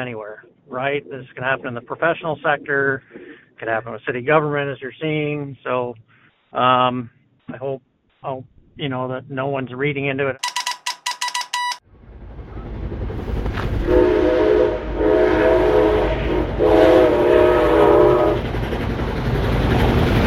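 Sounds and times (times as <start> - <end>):
speech: 0.0 - 10.5
quick ringing beeps: 10.4 - 11.8
nearly 100-year-old steam locomotive passing through Washington: 12.2 - 20.2
sustained multi-toned whistle of a nearly 100-year-old steam locomotive: 13.9 - 18.4.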